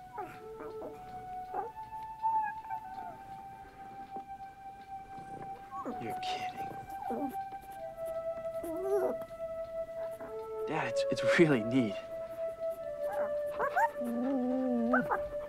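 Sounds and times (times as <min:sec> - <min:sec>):
new pet dog howling and yipping: 0:00.0 - 0:03.5, 0:05.5 - 0:07.6, 0:08.4 - 0:10.6, 0:12.8 - 0:15.4
steady humming tone: 0:00.0 - 0:15.4
speech: 0:06.0 - 0:07.4, 0:10.7 - 0:12.1.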